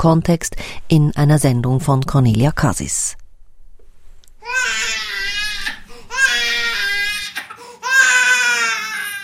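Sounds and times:
speech: 0:00.0 - 0:03.2, 0:04.4 - 0:05.0
infant crying: 0:04.4 - 0:09.2.

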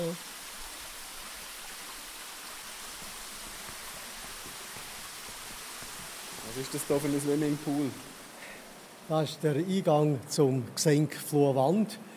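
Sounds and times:
spring water flowing in a mine tunnel: 0:00.0 - 0:09.5
speech: 0:06.6 - 0:08.1, 0:09.1 - 0:12.1.

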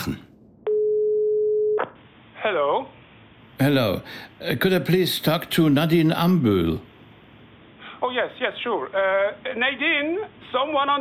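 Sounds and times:
speech: 0:00.0 - 0:00.3, 0:02.4 - 0:03.0, 0:03.6 - 0:06.9, 0:08.0 - 0:10.9
telephone ringing tone while calling a research institute landline: 0:00.7 - 0:01.8.

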